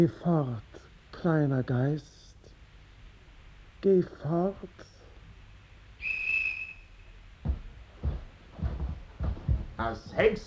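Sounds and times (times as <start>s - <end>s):
speech: 0.0s - 2.2s, 3.8s - 4.9s, 9.8s - 10.4s
high-pitched whistle blast: 6.0s - 7.2s
dull thumps: 7.4s - 10.4s.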